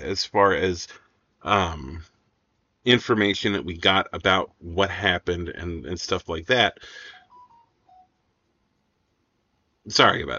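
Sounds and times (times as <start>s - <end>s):
speech: 0.0s - 2.1s, 2.8s - 7.2s, 9.8s - 10.3s
soft hiss: 0.0s - 10.3s
phone chiming short electronic tones: 7.2s - 8.1s.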